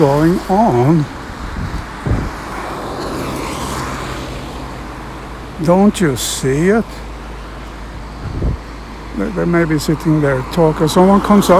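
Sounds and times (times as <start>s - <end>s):
speech: 0.0s - 1.7s, 5.6s - 7.1s, 9.2s - 11.5s
gasoline and diesel car engines in road traffic: 0.0s - 11.5s
low thump: 1.6s - 2.4s.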